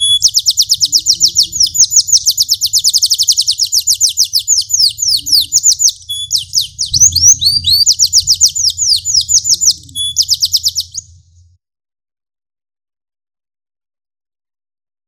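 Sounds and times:
canary pure whistled tones: 0:00.0 - 0:11.4
large lemon canary song with descending trills: 0:00.0 - 0:11.6.

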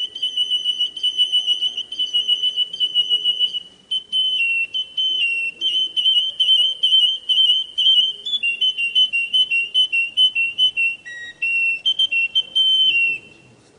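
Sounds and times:
Russian type domestic Atlantic canary delivering rapid rolled whistles: 0:00.0 - 0:13.4.

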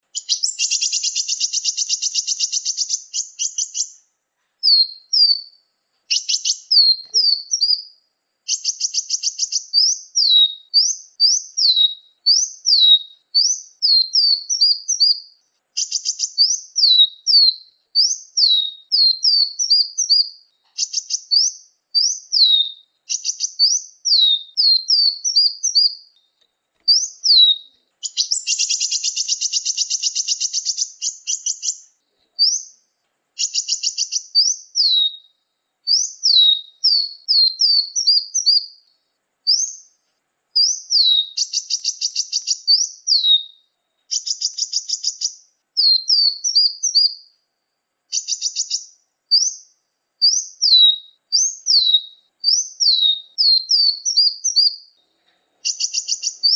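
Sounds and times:
hummingbird in Muncang: 0:00.0 - 0:56.5.

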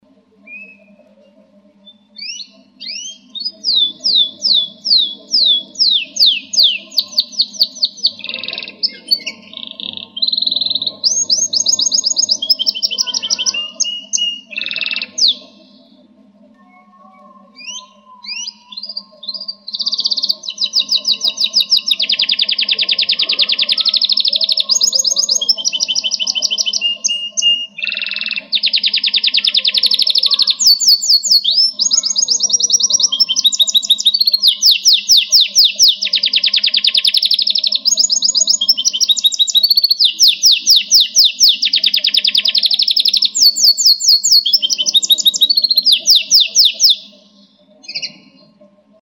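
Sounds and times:
canary singing: 0:00.0 - 0:49.0.

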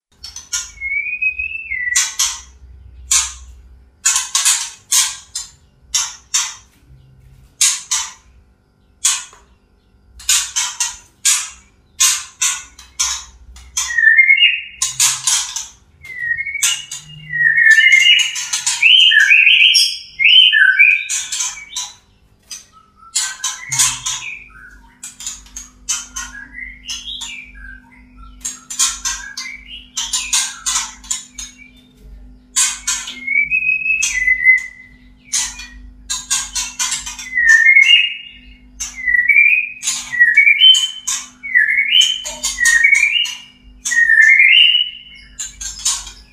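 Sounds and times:
female magpie robin calling: 0:00.4 - 0:02.5, 0:10.2 - 0:22.0, 0:22.7 - 0:31.8, 0:32.6 - 0:46.3.

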